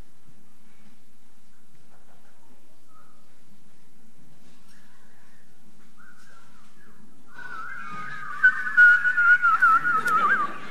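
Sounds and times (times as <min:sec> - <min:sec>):
faint low hum: 0:00.0 - 0:10.6
steady sustained whistled tone: 0:07.3 - 0:10.6.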